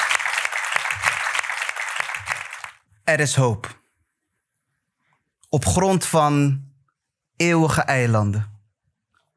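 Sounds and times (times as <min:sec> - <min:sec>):
crowd applause: 0:00.0 - 0:02.8
speech: 0:03.1 - 0:03.8, 0:05.5 - 0:06.7, 0:07.4 - 0:08.5.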